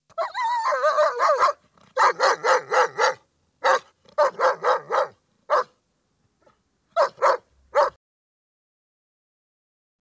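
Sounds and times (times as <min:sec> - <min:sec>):
dog barking: 0:00.7 - 0:05.8, 0:07.0 - 0:08.0.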